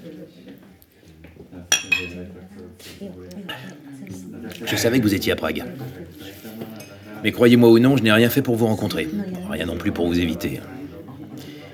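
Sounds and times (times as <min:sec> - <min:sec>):
murmur of voices: 0:00.0 - 0:11.7
glasses clinking in a toast: 0:01.7 - 0:02.2
speech: 0:02.2 - 0:06.4, 0:07.2 - 0:10.7.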